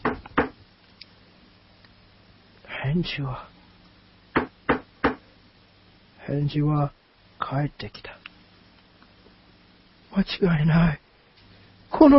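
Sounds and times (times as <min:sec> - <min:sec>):
sharp knocks on a door: 0:00.0 - 0:00.6, 0:04.4 - 0:05.2
speech: 0:02.8 - 0:03.5, 0:06.3 - 0:08.1, 0:10.2 - 0:11.0, 0:12.0 - 0:12.1.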